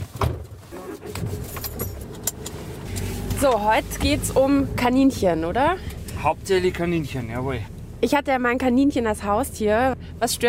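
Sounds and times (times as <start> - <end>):
car setting off and driving: 0.0 - 10.4
jingling and rattling: 1.3 - 2.2
speech: 3.4 - 10.4.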